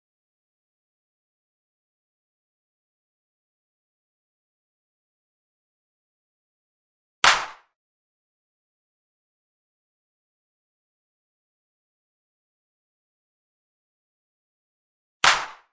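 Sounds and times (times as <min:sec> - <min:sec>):
clap: 0:07.2 - 0:07.8, 0:15.2 - 0:15.7.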